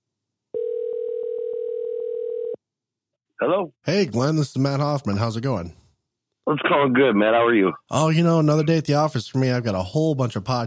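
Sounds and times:
telephone dial tone: 0.6 - 2.6
speech: 3.4 - 5.8, 6.5 - 10.6.

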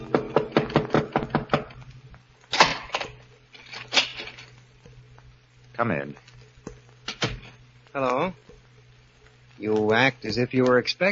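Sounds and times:
sharp raps on a door: 0.1 - 1.7
speech: 5.8 - 6.3, 7.9 - 8.4, 9.6 - 11.1.

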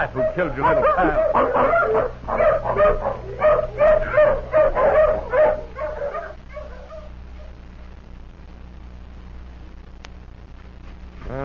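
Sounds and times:
speech: 0.0 - 5.0
hound barking and whimpering on a scent trail: 0.0 - 7.6
low steady hum: 0.0 - 11.4.

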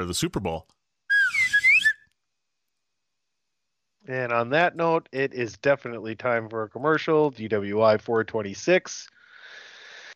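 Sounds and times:
speech: 0.0 - 0.8, 4.0 - 9.1
slide whistle warble: 1.1 - 2.1.

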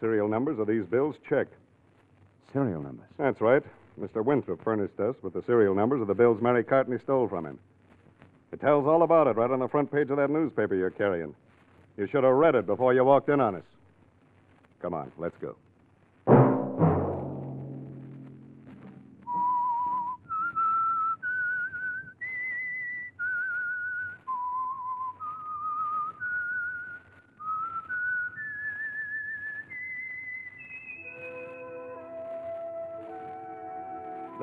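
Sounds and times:
speech: 0.0 - 1.7, 2.4 - 7.7, 8.5 - 11.4, 12.0 - 13.7, 14.8 - 15.6
loud sustained note: 16.3 - 19.5
lone whistler carrying a slow eerie melody: 19.2 - 34.4.

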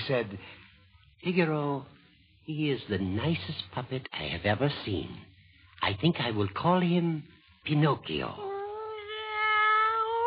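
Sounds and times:
speech: 0.1 - 0.6, 1.2 - 8.5
person imitating a cat meowing: 8.4 - 10.2.

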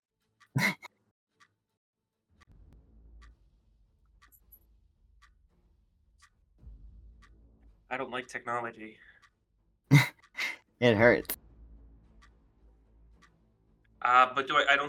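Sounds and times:
speech: 0.6 - 0.8, 8.0 - 9.1, 10.8 - 11.4, 14.1 - 14.8
large machine ticking: 2.4 - 10.6, 11.2 - 14.8
low rumble: 2.5 - 8.5, 11.4 - 14.7.

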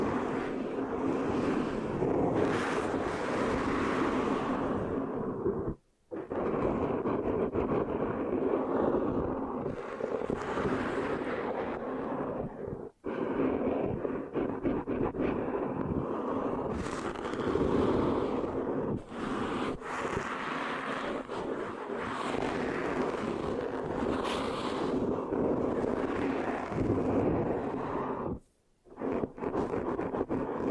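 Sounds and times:
sticky microphone scratching and rubbing: 0.0 - 4.6, 5.4 - 30.6.

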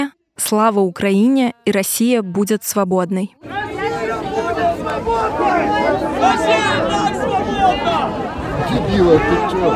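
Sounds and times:
speech: 0.5 - 3.4, 4.5 - 9.7
dense crowd hubbub at an outdoor street rally: 3.4 - 9.7
raised shouts from a rally crowd: 3.4 - 9.7.

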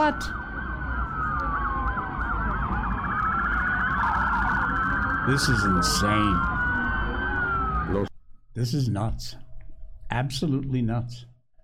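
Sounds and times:
speech: 0.0 - 0.4, 5.3 - 6.5, 7.9 - 9.4, 10.1 - 11.3
police car sirens wailing and yelping at a mall at night: 0.0 - 8.1
steady low rumble of traffic: 0.0 - 8.1.

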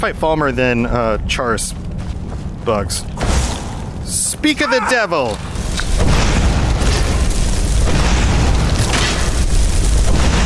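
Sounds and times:
speech: 0.0 - 3.4, 4.1 - 6.1
fireball spell explosion in a video game: 5.3 - 10.4.

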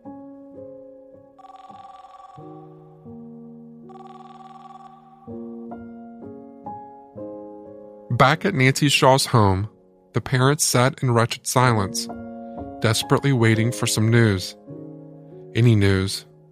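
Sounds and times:
telephone bell ringing: 1.4 - 3.1, 3.9 - 5.5
speech: 8.2 - 12.2, 12.8 - 14.6, 15.6 - 16.3.

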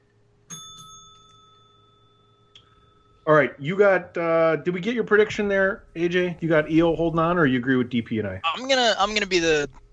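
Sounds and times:
bright metallic bell struck sharply: 0.5 - 3.3
speech: 3.3 - 9.8.

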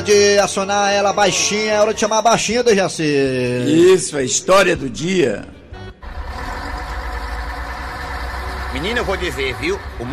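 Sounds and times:
speech: 0.0 - 5.6, 8.8 - 10.1
heavy bus engine idling: 6.0 - 10.1.

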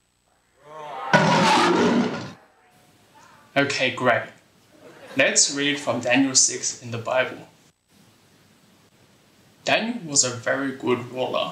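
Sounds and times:
crowd of voices roaring in imitation of a lion: 0.6 - 2.4
speech: 3.6 - 4.4, 5.2 - 7.5, 9.6 - 11.5.

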